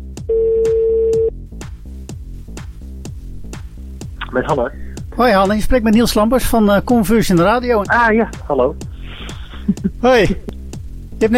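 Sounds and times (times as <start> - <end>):
faint rhythmic music: 0.0 - 11.3
mid-low telephone ringback tone: 0.3 - 1.3
speech: 4.3 - 8.9, 9.7 - 10.5, 11.2 - 11.3.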